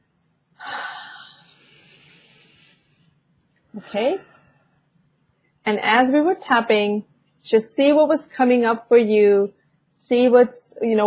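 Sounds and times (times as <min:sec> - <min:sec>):
deep breath during a guided tapping relaxation session: 0:00.6 - 0:03.2
speech: 0:03.8 - 0:04.3, 0:05.7 - 0:11.0.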